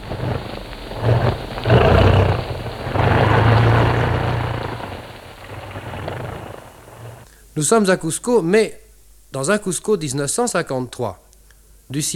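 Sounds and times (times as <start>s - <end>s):
airplane engine roar during landing: 0.0s - 7.2s
speech: 7.6s - 11.2s, 11.9s - 12.1s.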